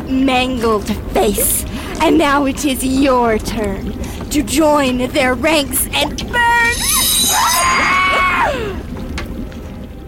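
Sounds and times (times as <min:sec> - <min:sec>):
low steady rumble: 0:00.0 - 0:10.0
speech: 0:00.1 - 0:07.9
loud shrill scream: 0:06.7 - 0:08.8.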